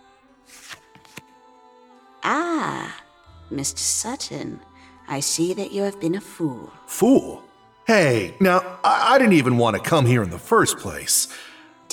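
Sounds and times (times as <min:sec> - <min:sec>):
tarot deck being shuffled: 0:00.5 - 0:01.3
tarot cards snapping flicks: 0:00.5 - 0:01.4
speech: 0:02.2 - 0:11.5.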